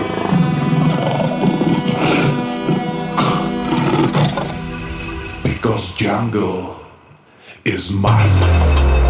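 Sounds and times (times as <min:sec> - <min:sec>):
lion roaring: 0:00.0 - 0:04.6
speech: 0:06.0 - 0:06.8, 0:07.7 - 0:09.0.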